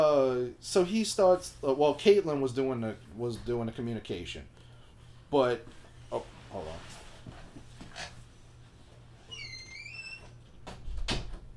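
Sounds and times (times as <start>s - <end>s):
speech: 0.6s - 4.6s, 5.3s - 7.0s
door creaking on its hinges: 9.2s - 11.5s
door shutting with a solid thump: 10.6s - 11.5s.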